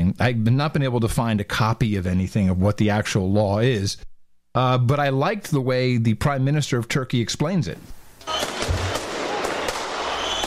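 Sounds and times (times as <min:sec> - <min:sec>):
speech: 0:00.1 - 0:08.7
outdoor fireworks crackling and banging at a protest: 0:08.2 - 0:10.4
thrown bottle rockets whistling at a protest: 0:08.2 - 0:10.4.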